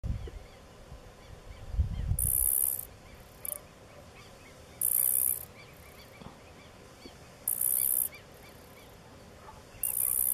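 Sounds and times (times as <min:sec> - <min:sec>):
grasshopper stridulating by rubbing hind legs against forewings: 0:02.2 - 0:03.7, 0:04.7 - 0:06.2, 0:07.4 - 0:09.0, 0:09.8 - 0:10.3.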